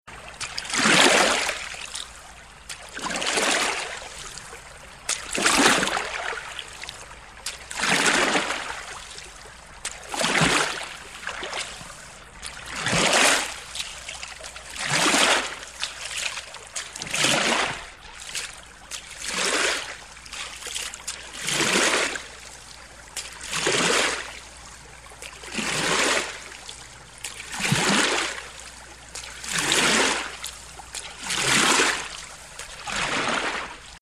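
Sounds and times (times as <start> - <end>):
boat rowing: 0.1 - 34.0.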